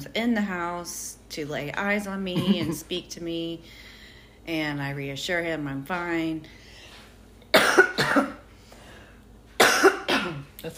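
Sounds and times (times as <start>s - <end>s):
speech: 0.0s - 6.6s, 10.2s - 10.7s
person coughing from a tickle in the throat: 2.4s - 2.8s, 7.5s - 8.4s, 9.6s - 10.5s.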